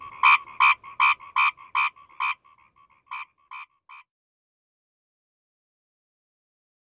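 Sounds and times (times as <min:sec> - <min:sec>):
Asian grass frog uttering loud rasping croaks: 0:00.0 - 0:04.0.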